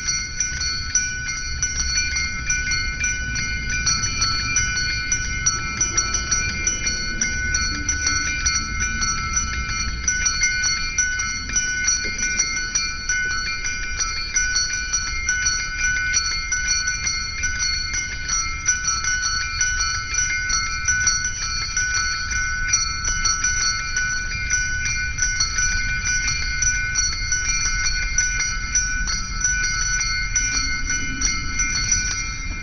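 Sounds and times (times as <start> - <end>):
church bells ringing: 0.0 - 32.6
constant low rumble: 1.6 - 13.5.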